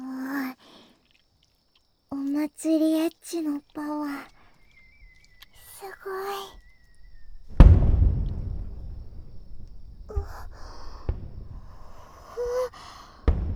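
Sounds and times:
speech: 0:02.4 - 0:04.3
sharper fainter fireworks pops: 0:04.6 - 0:13.5
fireworks bursting with a deep boom: 0:06.6 - 0:12.5, 0:13.2 - 0:13.5.

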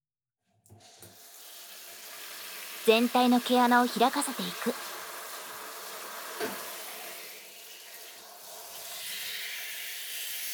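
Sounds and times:
speech: 0:02.9 - 0:05.0
tap water rinsing cut hair off a head: 0:06.4 - 0:06.8.

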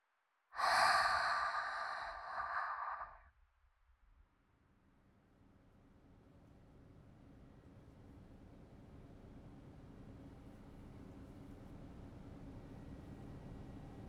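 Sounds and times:
slow exhaling breath during a breathing meditation for relaxation: 0:00.6 - 0:03.2.

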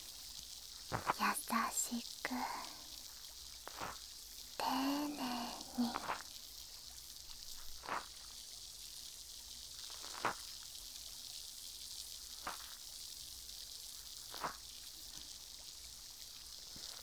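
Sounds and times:
brief crackling pops from a soaked cotton swab: 0:00.0 - 0:02.8, 0:03.5 - 0:06.4, 0:09.9 - 0:10.5
soft fizzing hiss from the tip of a soaked cotton swab: 0:00.0 - 0:17.0
speech: 0:01.9 - 0:02.7.

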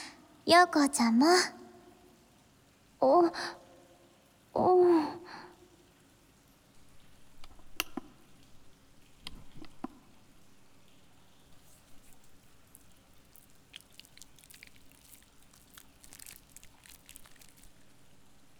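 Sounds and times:
speech: 0:00.5 - 0:01.6, 0:03.0 - 0:03.6
body soap being worked into foam: 0:11.5 - 0:17.8.

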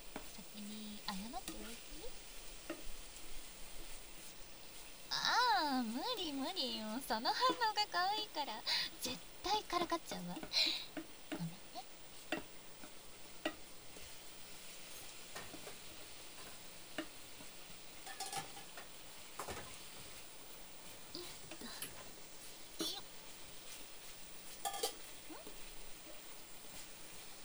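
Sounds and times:
food sizzling in a frying pan: 0:00.0 - 0:27.4
speech: 0:06.2 - 0:11.0
frying pan and utensil scraping and clattering as the pan is flipped: 0:12.3 - 0:23.0, 0:23.7 - 0:27.4.

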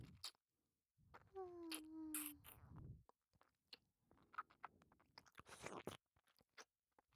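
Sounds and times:
wet tongue licking a face: 0:01.6 - 0:02.7, 0:03.4 - 0:06.7.

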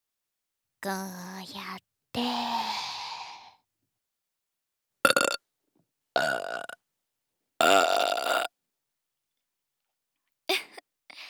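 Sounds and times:
speech: 0:00.8 - 0:02.8
loud guttural burps: 0:05.1 - 0:05.4, 0:06.2 - 0:06.8, 0:07.6 - 0:08.5.

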